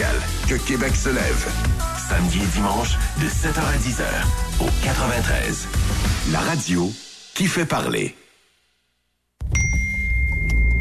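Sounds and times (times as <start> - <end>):
speech: 0.5 - 8.2
phone text message notification chime: 9.5 - 10.7.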